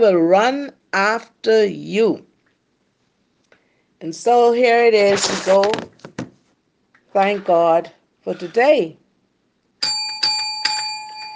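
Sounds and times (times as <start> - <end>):
speech: 0.0 - 2.3, 4.0 - 5.9, 7.1 - 9.0
bell ringing: 9.8 - 11.3.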